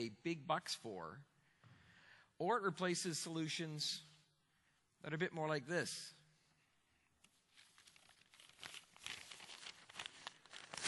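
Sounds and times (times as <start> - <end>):
speech: 0.0 - 1.3, 2.4 - 4.1, 5.0 - 6.2
paper crinkling and rustling: 7.4 - 10.8.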